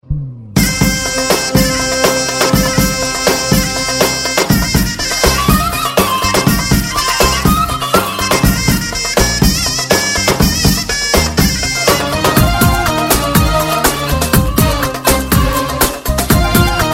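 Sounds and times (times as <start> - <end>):
Arabic wedding ringtone: 0.6 - 16.9.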